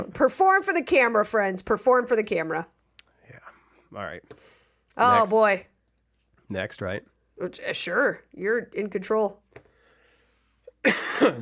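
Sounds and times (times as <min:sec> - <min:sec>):
speech: 0:00.0 - 0:02.7, 0:03.9 - 0:05.7, 0:06.5 - 0:09.4, 0:10.8 - 0:11.4
harsh cough with a rough throaty tail: 0:10.8 - 0:11.4.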